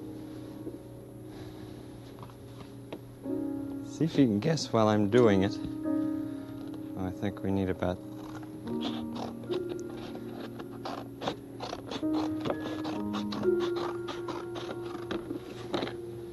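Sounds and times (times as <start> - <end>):
faint steady hum: 0.0 - 16.3
speech: 4.0 - 5.8, 7.2 - 8.1, 8.7 - 9.1
scissors snipping: 8.1 - 16.0.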